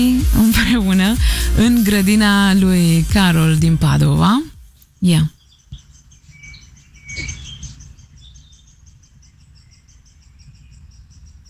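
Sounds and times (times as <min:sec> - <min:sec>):
speech: 0:00.0 - 0:05.4
small birds chirping and twittering in an outdoor garden: 0:03.8 - 0:11.4.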